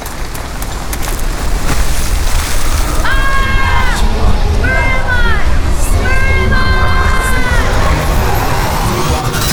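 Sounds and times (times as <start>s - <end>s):
person jumping into waterfall water with a splash: 0.0s - 3.6s
loud steady rushing waterfall water: 0.0s - 9.4s.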